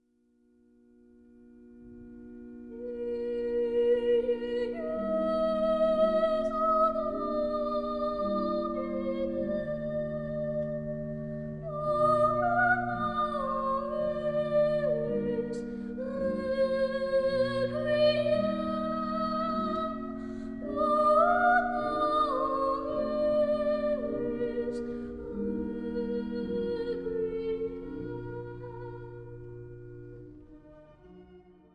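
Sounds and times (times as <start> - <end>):
choral soprano singing: 2.7 - 31.5.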